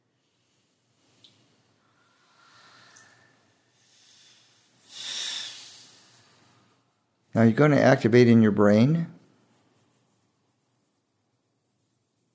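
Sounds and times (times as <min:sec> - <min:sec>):
gentle breathing into the throat: 0:00.1 - 0:07.1
speech: 0:07.4 - 0:09.2.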